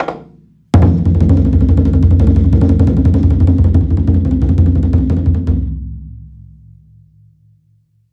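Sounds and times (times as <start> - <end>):
chu daiko drum fill roll with sticks: 0.0 - 6.1.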